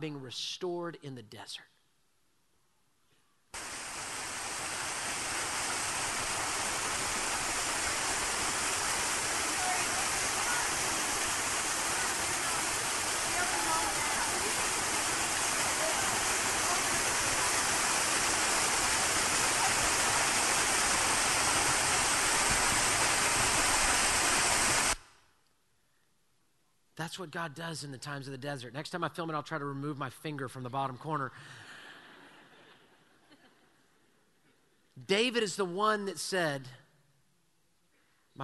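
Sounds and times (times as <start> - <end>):
speech: 0.0 - 1.8, 27.1 - 31.7, 35.0 - 36.8
water flowing from a desert spring: 3.6 - 25.0.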